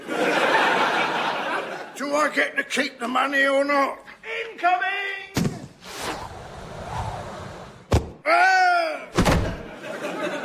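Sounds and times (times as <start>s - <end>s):
laughter: 0.0s - 2.0s, 9.4s - 10.4s
speech: 2.2s - 4.0s, 4.6s - 4.9s, 8.3s - 8.6s
rushing whoosh of a cannon shot: 5.8s - 7.9s
thump: 7.9s - 8.2s, 9.2s - 9.7s.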